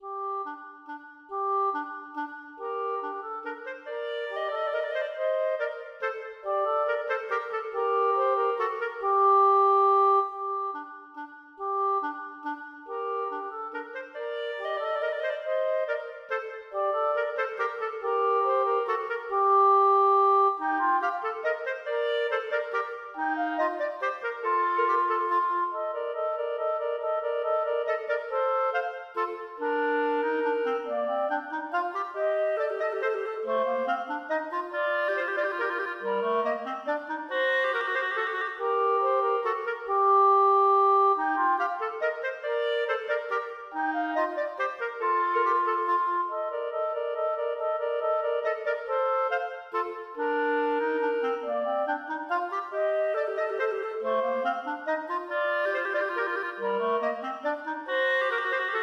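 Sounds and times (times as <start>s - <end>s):
clarinet duet playing a minuet: 0.0s - 58.8s.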